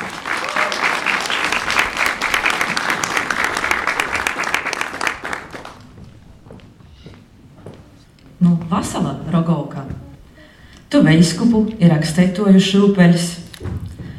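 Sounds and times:
audience applause welcoming a guest: 0.0s - 6.0s
speech: 11.1s - 13.4s.

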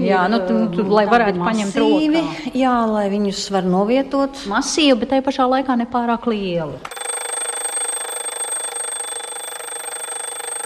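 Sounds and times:
speech: 0.0s - 7.0s
carriage clock mechanical alarm bell ringing: 6.9s - 10.6s.

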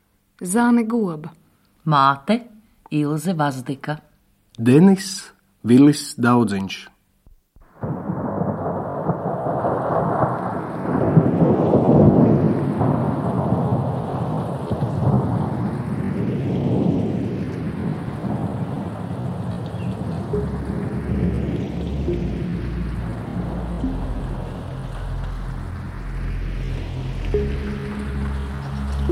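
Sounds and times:
speech: 0.4s - 6.9s, 7.8s - 8.1s
deep rolls of thunder rumbling: 7.6s - 29.0s
heavy steady rain: 7.6s - 29.0s.

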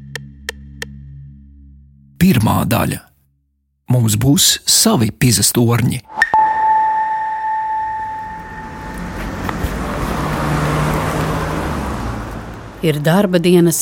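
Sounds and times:
speech: 2.2s - 3.1s, 3.9s - 6.2s, 12.8s - 13.8s
high sustained electronic tone: 6.1s - 9.6s
busy city street traffic with cars passing: 8.0s - 13.8s.

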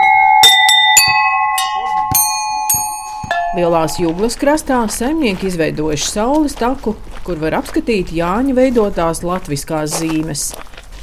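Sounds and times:
various folk bells rung at a rural crafts house: 0.0s - 4.6s
speech: 3.6s - 10.7s.

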